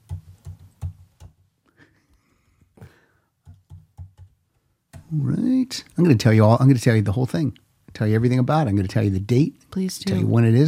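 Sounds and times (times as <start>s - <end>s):
typing on a computer keyboard: 0.1s - 1.4s, 3.4s - 5.0s
speech: 5.1s - 10.6s.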